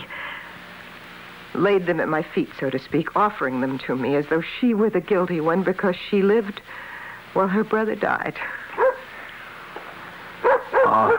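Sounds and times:
speech: 1.5s - 8.6s
dog barking at the door: 8.8s - 9.1s, 10.4s - 11.1s
faint dog yip: 10.4s - 11.1s.

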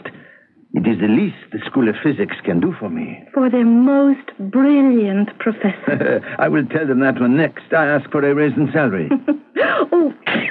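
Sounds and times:
speech: 0.8s - 10.2s
person sneezing loudly: 9.6s - 10.4s.

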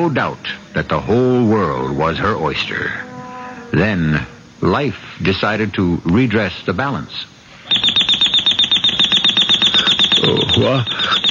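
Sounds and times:
speech: 0.0s - 3.1s, 3.7s - 7.4s, 10.3s - 11.2s
alarm clock ringing in the morning: 7.7s - 11.2s.

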